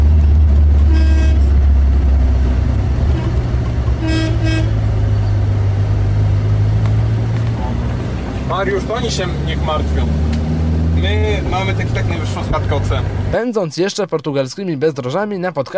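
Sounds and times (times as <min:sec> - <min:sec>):
loud steady engine rumble: 0:00.0 - 0:13.4
car horn honking on a narrow mountain road in southern Portugal: 0:00.8 - 0:01.7, 0:03.0 - 0:05.0
speech: 0:08.7 - 0:10.2, 0:11.0 - 0:15.7.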